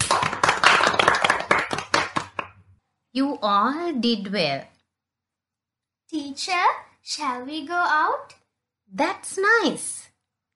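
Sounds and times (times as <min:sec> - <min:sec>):
group clapping hands: 0:00.0 - 0:02.8
speech: 0:03.2 - 0:04.7, 0:06.1 - 0:10.1.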